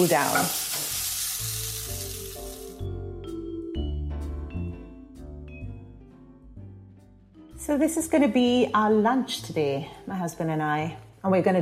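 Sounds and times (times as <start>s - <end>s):
speech: 0.0s - 0.6s, 7.7s - 11.6s
raisins and onion sizzling while mixed in a hot pan: 0.0s - 2.9s
music: 0.0s - 11.6s.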